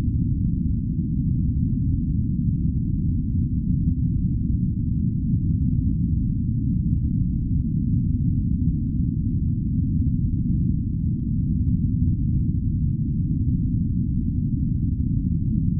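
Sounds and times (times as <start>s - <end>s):
deep steady spaceship rumble: 0.0s - 15.7s.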